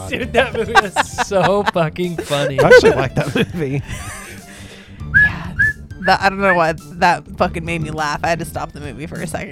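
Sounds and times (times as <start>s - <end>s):
laughter: 0.0s - 4.6s
speech: 0.1s - 4.2s, 6.1s - 9.5s
person imitating with their voice a whistle blown by a school principal: 5.1s - 6.2s.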